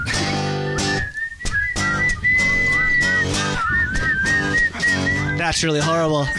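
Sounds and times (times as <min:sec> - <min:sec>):
person whistling a tune: 0:00.0 - 0:06.3
speech: 0:05.4 - 0:06.3.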